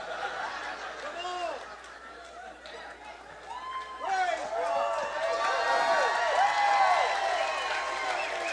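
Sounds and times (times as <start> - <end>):
laughter: 0.0 - 2.6
audience cheering and screaming: 3.4 - 8.5.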